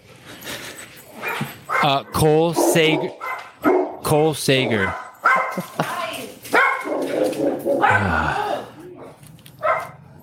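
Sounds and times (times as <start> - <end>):
dog barking and whimpering: 1.1 - 4.0, 4.8 - 5.7, 6.5 - 8.1, 9.6 - 10.0
speech: 1.8 - 5.0, 5.6 - 5.8.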